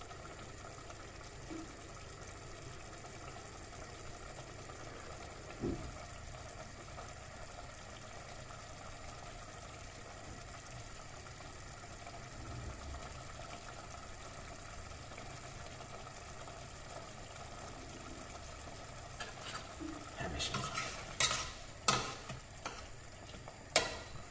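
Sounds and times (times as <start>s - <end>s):
meat and tomato sizzling in a pan: 0.0s - 24.2s
utensil scraping and clattering in a pan while stirring: 19.2s - 22.9s.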